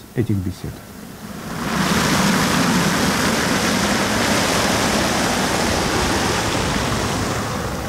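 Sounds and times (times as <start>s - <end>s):
speech: 0.2s - 1.0s
water falling and splashing over a giant rotating metal sphere sculpture: 1.6s - 7.8s.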